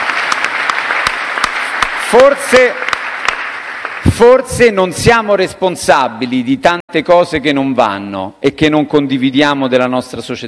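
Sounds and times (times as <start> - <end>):
audience applause: 0.0 - 4.4
speech: 2.1 - 2.8, 4.2 - 10.4.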